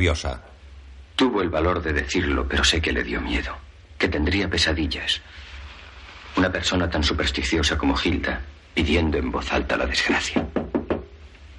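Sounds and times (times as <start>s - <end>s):
speech: 0.0s - 0.5s, 1.2s - 5.4s, 6.4s - 10.4s
firm knocking on a door: 10.3s - 11.1s.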